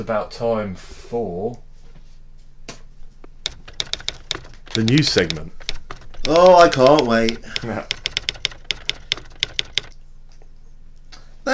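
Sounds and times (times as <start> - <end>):
speech: 0.0 - 1.7, 4.8 - 5.6, 6.3 - 8.0
typewriter keys clacking: 3.4 - 10.0.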